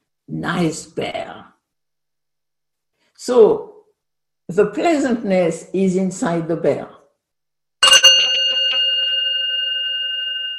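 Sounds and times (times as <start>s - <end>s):
speech: 0.3s - 1.5s, 3.2s - 3.7s, 4.5s - 7.0s
meditation bell struck and ringing: 7.8s - 10.5s.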